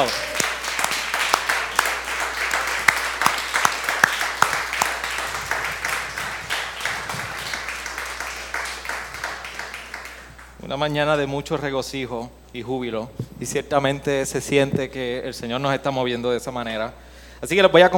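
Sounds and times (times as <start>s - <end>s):
speech: 0.0s - 0.3s, 10.7s - 17.9s
audience applauding at a morning church service: 0.0s - 10.6s
faint low hum: 0.0s - 17.9s.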